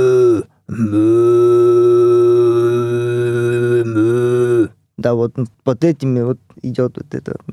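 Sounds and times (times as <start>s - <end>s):
person imitating cow mooing with their voice: 0.0s - 4.8s
speech: 5.0s - 7.5s.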